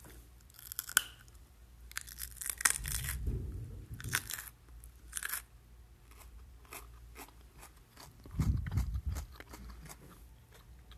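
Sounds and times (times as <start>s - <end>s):
crunchy carrot being bitten: 0.0s - 10.9s
steady chewing of carrot: 6.1s - 10.9s.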